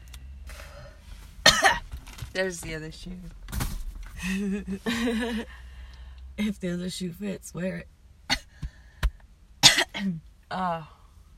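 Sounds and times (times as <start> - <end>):
person coughing: 1.5 - 1.8, 9.6 - 10.2
speech: 2.4 - 3.4, 4.2 - 5.6, 6.4 - 7.9, 10.0 - 11.0.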